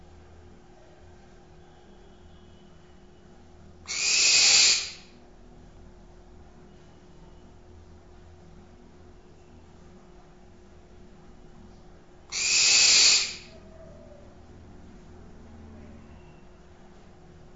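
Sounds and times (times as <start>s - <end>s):
barn owl hoarse hissing screeches: 3.9s - 5.1s, 12.3s - 13.6s.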